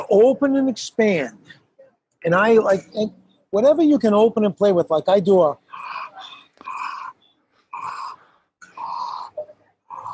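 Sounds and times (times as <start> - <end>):
speech: 0.1 - 1.6, 2.2 - 6.3
raspy wheezy breathing through a wide-open mouth and throat: 5.7 - 10.1.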